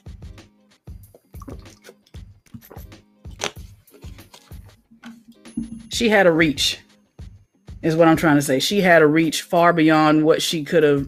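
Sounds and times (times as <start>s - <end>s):
water glugging and gurgling: 1.1s - 2.8s
speech: 6.0s - 6.8s, 7.8s - 11.0s.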